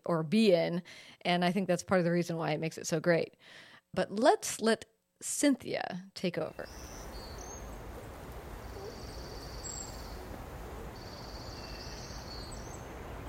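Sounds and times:
speech: 0:00.0 - 0:07.2
constant rushing outdoor background: 0:06.6 - 0:13.2
spring birds calling in Seattle: 0:06.6 - 0:13.2
faint sea lions: 0:07.6 - 0:12.3.

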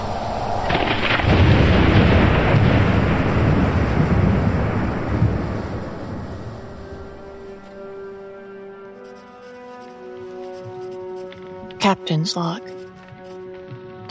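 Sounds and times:
roaring wind during a storm at sea: 0:00.0 - 0:08.0
heavy rumbling thunderclap during a storm at sea: 0:00.0 - 0:08.2
speech: 0:12.2 - 0:12.8.

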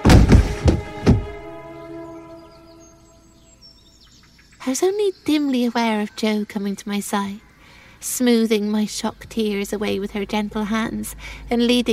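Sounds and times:
body thudding heavily onto wooden floorboards: 0:00.0 - 0:01.4
speech: 0:04.7 - 0:11.9.

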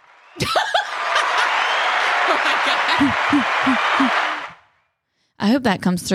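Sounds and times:
audience cheering and applauding: 0:00.0 - 0:04.6
whoops and laughter: 0:00.2 - 0:04.5
speech: 0:00.4 - 0:00.8, 0:03.0 - 0:04.2, 0:05.4 - 0:06.1.

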